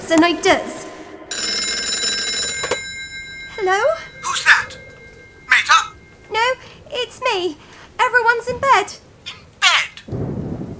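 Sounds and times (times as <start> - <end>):
speech: 0.1 - 0.8, 3.6 - 4.8, 5.7 - 9.0
metallic telephone bell ringing: 1.3 - 6.8.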